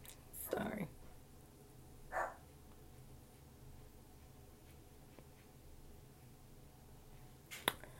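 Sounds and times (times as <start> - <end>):
quiet room hum: 0.0 - 7.9
dog bark: 2.1 - 2.4.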